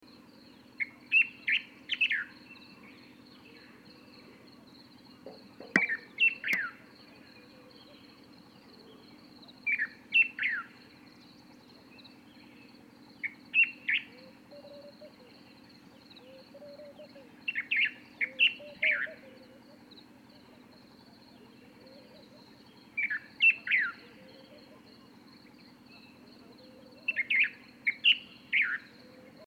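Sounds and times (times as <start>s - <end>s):
Levant bulbul calling: 5.1s - 8.2s, 8.8s - 10.8s, 13.2s - 29.4s.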